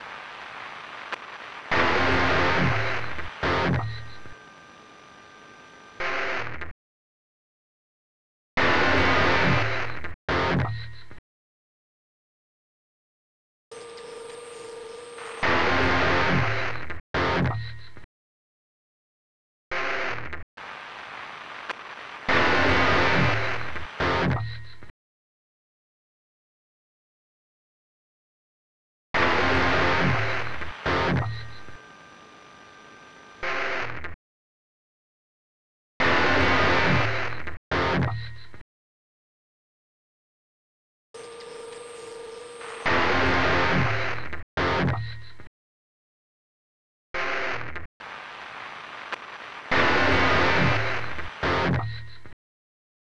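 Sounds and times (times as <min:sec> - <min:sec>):
guitar: 0:00.0 - 0:06.7, 0:08.6 - 0:11.2, 0:15.2 - 0:18.0, 0:20.0 - 0:24.9, 0:29.2 - 0:32.4, 0:36.0 - 0:38.6, 0:42.6 - 0:45.5, 0:47.4 - 0:52.3.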